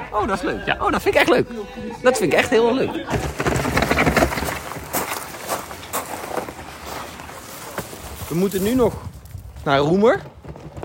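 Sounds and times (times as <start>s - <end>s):
laughter: 0.0s - 4.0s
rustling windy noise: 0.0s - 10.8s
speech: 0.2s - 3.8s, 8.3s - 10.4s
footsteps walking over a sandy hill: 4.7s - 9.7s.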